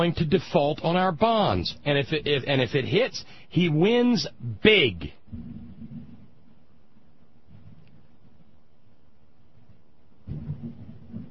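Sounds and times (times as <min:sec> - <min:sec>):
speech: 0:00.0 - 0:05.6
steady hiss: 0:00.0 - 0:11.2
distant thunder rumbling: 0:05.3 - 0:08.4, 0:09.6 - 0:11.2.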